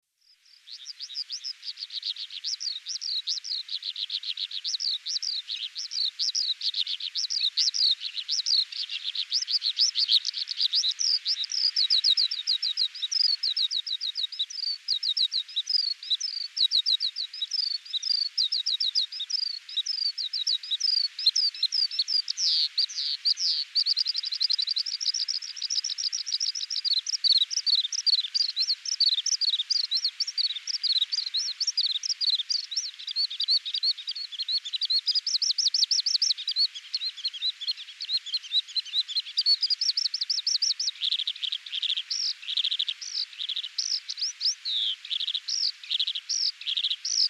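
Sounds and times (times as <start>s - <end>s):
Oriental skylark singing: 0.6s - 47.2s.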